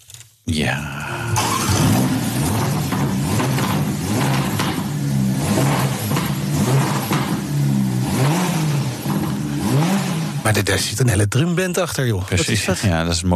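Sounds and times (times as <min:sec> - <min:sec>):
speech: 0:00.5 - 0:01.5, 0:10.5 - 0:13.3
Ferrari sports car engine revving: 0:01.3 - 0:10.6
Ferrari sports car crackling exhaust pops and bangs: 0:01.8 - 0:07.6, 0:08.2 - 0:10.0.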